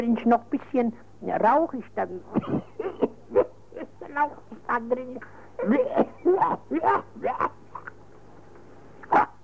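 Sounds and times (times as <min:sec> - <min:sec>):
speech: 0:00.0 - 0:03.0, 0:04.2 - 0:07.6
person coughing theatrically and hacking: 0:02.3 - 0:04.1, 0:05.6 - 0:07.9.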